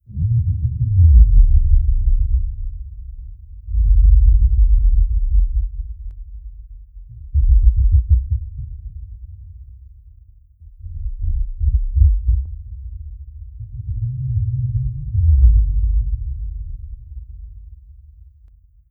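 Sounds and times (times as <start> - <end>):
sub bass wobble ambience: 0.1 - 9.7, 10.6 - 18.4.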